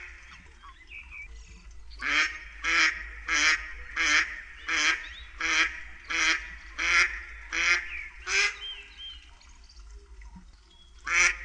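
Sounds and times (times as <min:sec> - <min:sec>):
mallard giving loud rasping quacks: 0:02.0 - 0:08.7, 0:11.1 - 0:11.4.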